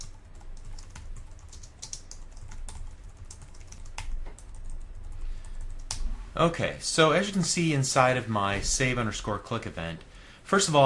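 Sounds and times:
code being typed on a computer keyboard: 0.0s - 6.0s
speech: 6.4s - 10.8s.

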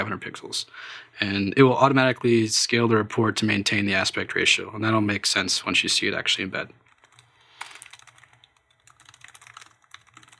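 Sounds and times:
speech: 0.0s - 6.8s
typing code on a computer keyboard: 6.8s - 10.3s.

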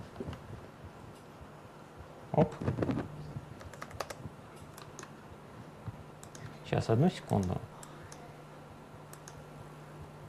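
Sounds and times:
low steady hum: 0.0s - 10.2s
speech: 2.4s - 3.0s, 6.7s - 7.7s
keys pressed on a computer keyboard: 3.6s - 5.1s, 6.2s - 6.5s, 7.3s - 7.9s.

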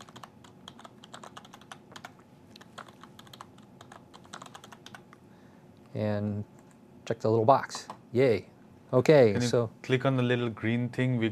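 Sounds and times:
quiet fast typing on a computer keyboard: 0.0s - 5.1s
speech: 6.0s - 11.3s.

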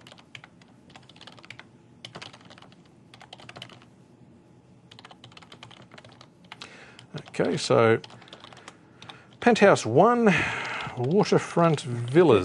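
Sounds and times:
rapid computer keyboard typing: 0.0s - 3.9s, 4.9s - 9.2s
speech: 7.4s - 8.2s, 9.5s - 12.4s.

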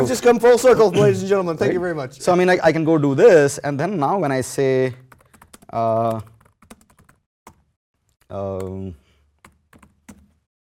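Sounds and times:
speech: 0.0s - 5.0s, 5.7s - 6.3s, 8.3s - 9.0s
typing on a computer keyboard: 5.0s - 7.7s, 9.4s - 10.4s.

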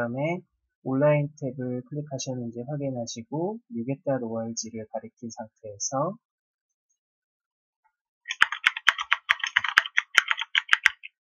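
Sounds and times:
speech: 0.0s - 6.3s
typing on a computer keyboard: 8.3s - 11.2s.

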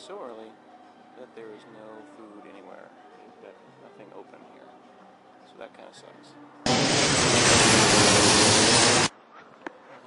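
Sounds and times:
speech: 0.1s - 7.5s
aircraft roar at an airport: 6.7s - 9.1s.

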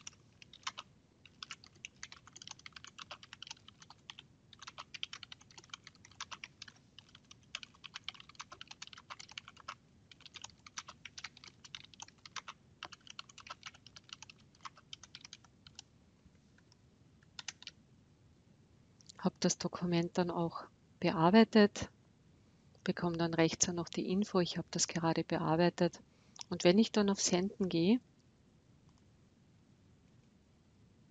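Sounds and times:
typing on a computer keyboard: 0.0s - 15.9s, 17.3s - 17.8s
speech: 19.2s - 22.0s, 22.9s - 28.1s.

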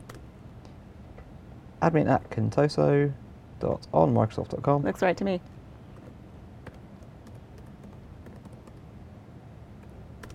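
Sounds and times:
computer keyboard keys clicking as a password is typed: 0.0s - 0.2s, 6.0s - 8.8s, 10.2s - 10.3s
low noise: 0.0s - 10.3s
speech: 1.8s - 5.6s.

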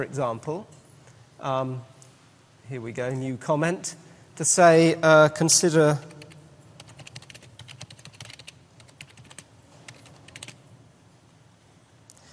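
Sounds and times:
speech: 0.0s - 0.8s, 1.4s - 1.9s, 2.7s - 6.2s
typing on a computer keyboard: 6.0s - 10.6s.

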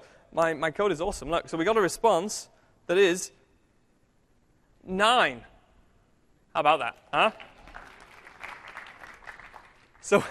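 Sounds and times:
speech: 0.3s - 3.4s, 4.8s - 5.5s, 6.6s - 7.5s, 10.0s - 10.2s
audience applause after a joke and a working code demonstration: 7.3s - 10.2s.

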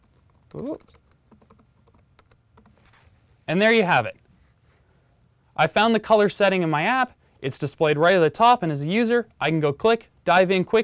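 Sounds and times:
typing a search on a computer keyboard: 0.0s - 3.0s
speech: 0.5s - 1.0s, 3.5s - 4.2s, 5.6s - 10.8s.

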